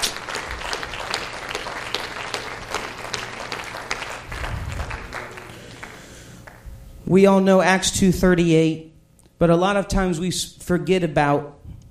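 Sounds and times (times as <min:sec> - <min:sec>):
audience applause in praise: 0:00.0 - 0:06.6
speech: 0:07.1 - 0:11.6.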